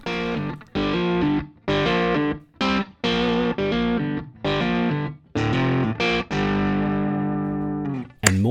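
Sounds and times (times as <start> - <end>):
distorted electric guitar played through amp simulations: 0.0 - 8.1
sharp click: 8.2 - 8.4.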